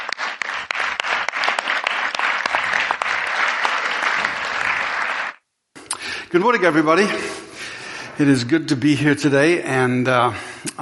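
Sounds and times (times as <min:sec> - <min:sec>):
crowd applauding: 0:00.0 - 0:05.4
speech: 0:06.3 - 0:07.4, 0:08.2 - 0:10.8.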